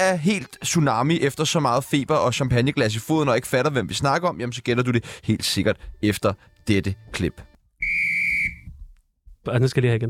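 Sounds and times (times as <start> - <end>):
speech: 0.0 - 7.5, 9.5 - 10.0
referee whistle blast to start a match: 7.8 - 8.7.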